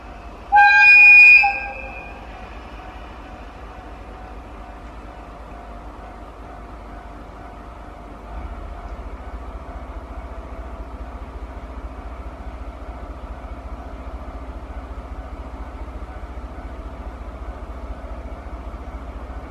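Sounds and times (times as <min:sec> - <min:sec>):
DE10 diesel locomotive engine rumble departing a station in the Kushiro wetlands: 0:00.0 - 0:19.4
DE10 diesel locomotive horn blast: 0:00.5 - 0:02.4.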